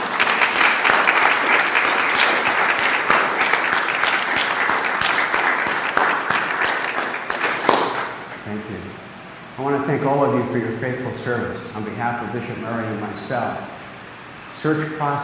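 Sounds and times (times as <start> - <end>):
large audience applauding: 0.0 - 8.4
speech: 9.8 - 13.7, 14.6 - 15.2.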